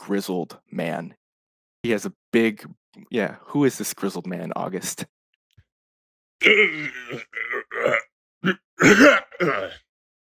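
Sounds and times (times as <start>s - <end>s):
speech: 0.1s - 1.2s, 1.8s - 5.2s, 6.4s - 9.8s
man hawking up a thick rope of phlegm: 6.4s - 9.7s.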